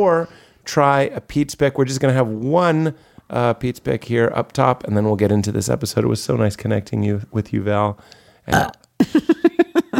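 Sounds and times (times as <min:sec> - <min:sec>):
speech: 0:00.0 - 0:09.4
loud throaty rolling burp: 0:08.5 - 0:08.9.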